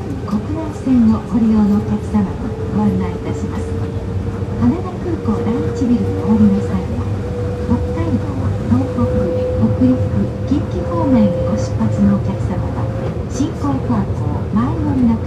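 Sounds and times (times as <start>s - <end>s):
Tokyo Monorail Type 1000 car running with low rumble: 0.0s - 15.2s
voices of monorail passengers talking: 0.0s - 15.2s.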